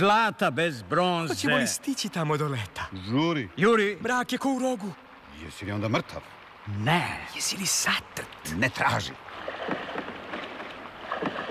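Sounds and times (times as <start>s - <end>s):
speech: 0.0s - 9.8s
steady wash of water: 0.0s - 11.5s
oars knocking against a rowing boat: 9.3s - 11.5s.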